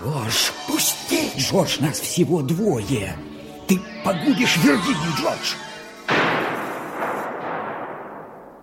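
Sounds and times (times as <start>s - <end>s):
speech: 0.0s - 5.7s
rifle shot: 6.1s - 8.5s.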